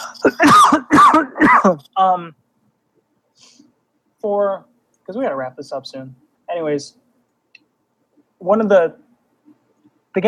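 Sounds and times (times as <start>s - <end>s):
harsh coughing: 0.0s - 1.9s
speech: 0.2s - 0.6s, 2.0s - 2.4s, 4.2s - 7.0s, 8.4s - 9.0s.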